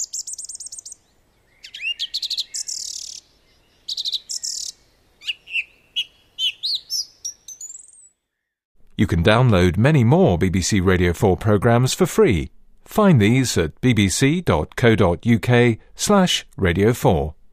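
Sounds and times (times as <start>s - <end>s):
song thrush singing: 0.0s - 8.6s
speech: 9.0s - 17.4s.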